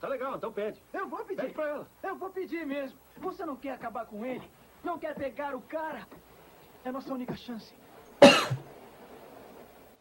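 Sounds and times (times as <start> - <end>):
speech: 0.2 - 8.6
person coughing: 8.2 - 8.6.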